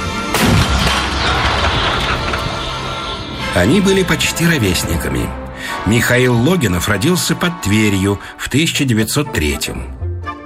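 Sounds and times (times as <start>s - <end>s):
long rumbling roar and reverberating echo of artillery fire: 0.0s - 5.5s
heavy artillery gun firing a shot: 0.2s - 3.3s
speech: 3.6s - 10.0s.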